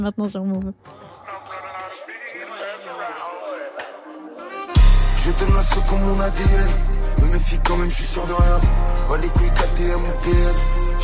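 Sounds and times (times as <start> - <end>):
speech: 0.0 - 1.1, 5.2 - 11.0
wavering melodic vocal sample in a rap track intro: 1.2 - 11.0
loud heavy bass-driven rap beat: 4.8 - 11.0.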